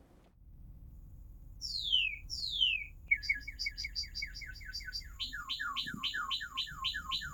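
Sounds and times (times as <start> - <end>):
northern cardinal singing loud clear whistles: 1.6 - 7.3.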